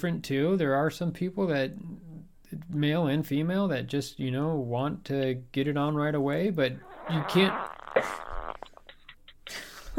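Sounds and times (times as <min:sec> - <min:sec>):
speech: 0:00.0 - 0:02.0, 0:02.7 - 0:08.2
raspy fart-like noise: 0:06.8 - 0:09.4
faint scattered crackles: 0:06.8 - 0:09.6.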